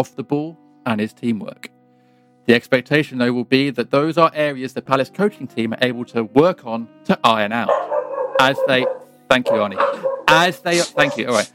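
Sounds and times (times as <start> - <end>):
speech: 0.0 - 1.7, 2.4 - 7.8, 8.4 - 11.5
dog barking sharp yappy barks: 7.6 - 11.4.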